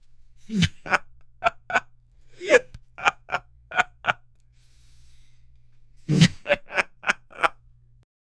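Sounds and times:
man laughing: 0.5 - 4.2, 6.1 - 7.6.

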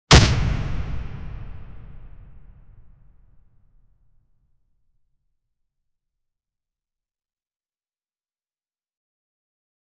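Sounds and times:
sniper rifle gunshots: 0.1 - 3.2.

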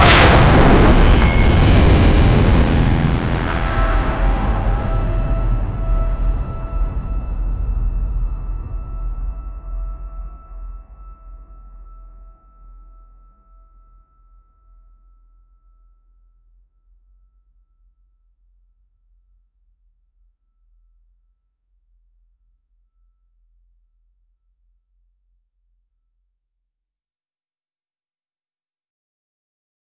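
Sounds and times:
dark powerful bass-heavy tone: 0.0 - 12.4.

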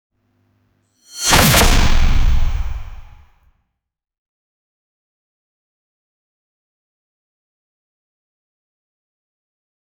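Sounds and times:
giant pen weapon swing: 1.1 - 3.3.

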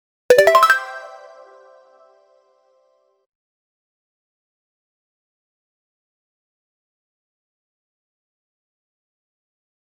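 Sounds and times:
retro Game Boy Advance game sound effect: 0.3 - 2.0.

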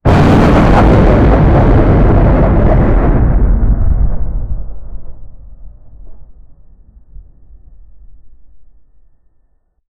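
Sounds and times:
thunder with lightning: 0.0 - 9.3.

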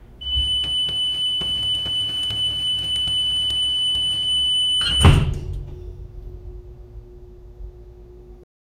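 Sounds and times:
subway door closing: 0.2 - 7.6.

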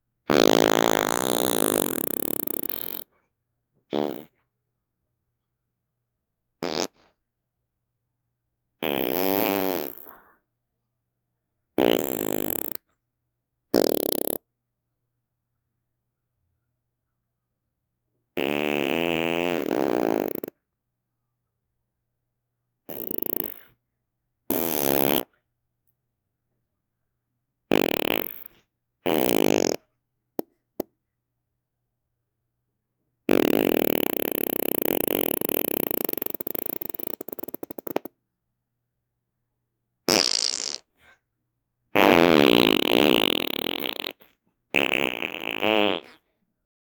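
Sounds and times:
farting sound effect: 0.3 - 3.2, 3.9 - 4.5, 6.6 - 7.2, 8.8 - 10.4, 11.8 - 12.9, 13.7 - 14.5, 18.4 - 20.6, 22.9 - 23.8, 24.5 - 25.4, 27.7 - 30.9, 33.3 - 38.2, 40.1 - 40.9, 42.0 - 46.4.

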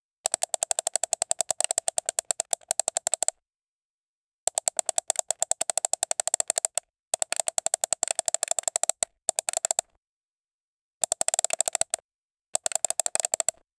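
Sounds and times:
rapid mouse clicks: 0.3 - 3.4, 4.5 - 9.9, 11.0 - 12.0, 12.6 - 13.6.

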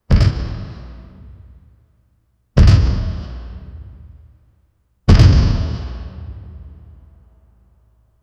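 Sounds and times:
loud mechanical thump: 0.1 - 1.5, 2.6 - 4.2, 5.1 - 6.8.

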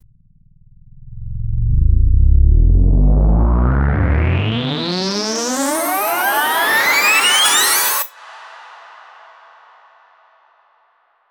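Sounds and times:
cinematic riser for a promotional: 1.1 - 8.1.

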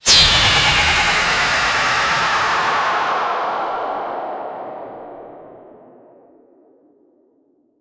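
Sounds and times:
ultra fast sharp cyber whoosh: 0.0 - 5.9.

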